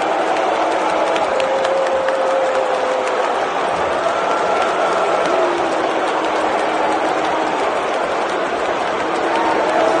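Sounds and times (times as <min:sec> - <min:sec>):
huge arena crowd booing a video: 0:00.0 - 0:09.9
scattered clapping in an arena crowd: 0:00.0 - 0:09.9.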